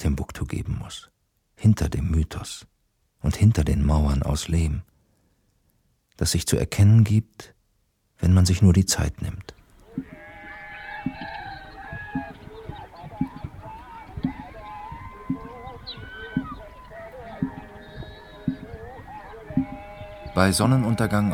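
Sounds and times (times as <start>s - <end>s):
speech: 0.0s - 4.9s, 6.2s - 7.6s, 8.2s - 10.2s, 20.4s - 21.3s
goats and sheep bleating while being herded home: 9.8s - 21.3s
faint human voices: 9.9s - 21.3s.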